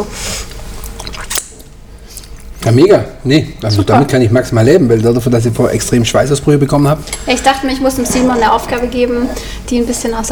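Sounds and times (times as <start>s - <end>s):
wet chewing of a summer roll being eaten: 0.5s - 2.6s
speech: 2.6s - 10.2s.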